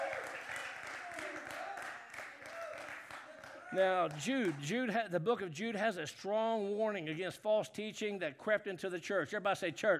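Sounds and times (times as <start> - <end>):
audience applauding: 0.0 - 4.6
speech: 3.7 - 9.9.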